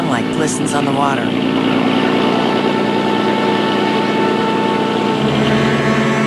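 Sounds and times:
motorboat engine droning as the boat heads down a channel: 0:00.0 - 0:06.2
speech: 0:00.5 - 0:02.1.

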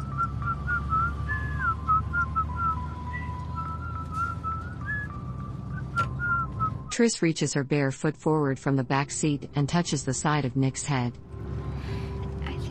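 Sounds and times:
man whistling a light wandering tune in a car: 0:00.0 - 0:06.9
low rumble of a moving car's engine: 0:00.0 - 0:12.6
road noise of a moving car: 0:00.0 - 0:12.6
speech: 0:07.0 - 0:11.3.

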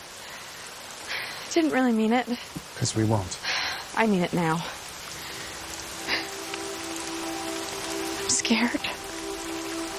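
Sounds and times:
steady rain: 0:00.0 - 0:09.9
speech: 0:01.5 - 0:04.8, 0:08.5 - 0:08.9.

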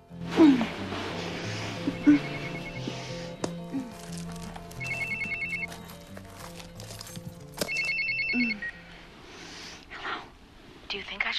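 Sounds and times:
soft music: 0:00.0 - 0:11.3
speech: 0:02.0 - 0:02.4
mobile phone ringing with an electronic ringtone: 0:02.0 - 0:03.0, 0:04.8 - 0:05.8, 0:07.7 - 0:08.9.

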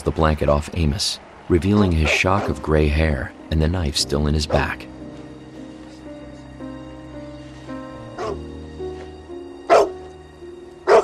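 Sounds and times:
speech: 0:00.0 - 0:04.9
dog barking: 0:02.0 - 0:02.6, 0:08.2 - 0:08.4, 0:09.7 - 0:10.0, 0:10.9 - 0:11.0.

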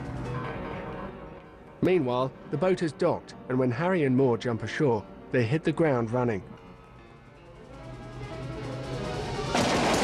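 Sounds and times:
speech: 0:01.8 - 0:06.6
gunfire as a man comes under fire: 0:09.5 - 0:10.0.

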